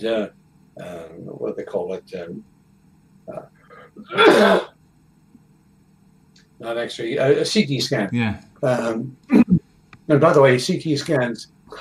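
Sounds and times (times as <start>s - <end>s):
speech: 0.0s - 2.5s, 3.3s - 4.7s, 6.6s - 9.5s, 10.1s - 11.7s
faint throat sounds: 3.3s - 4.7s
person with a lingering residual cough: 4.0s - 4.7s.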